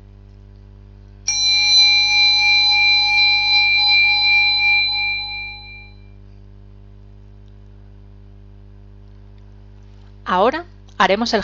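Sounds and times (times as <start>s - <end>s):
faint steady low hum: 0.0s - 11.4s
meditation bell ringing: 1.3s - 6.2s
speech: 10.3s - 11.4s.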